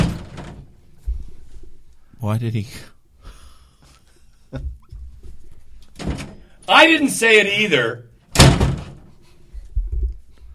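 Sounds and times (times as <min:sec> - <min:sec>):
heavy door slamming shut: 0:00.0 - 0:00.7, 0:06.0 - 0:06.5, 0:08.3 - 0:09.1
speech: 0:02.2 - 0:03.0, 0:04.5 - 0:04.8, 0:06.7 - 0:08.1.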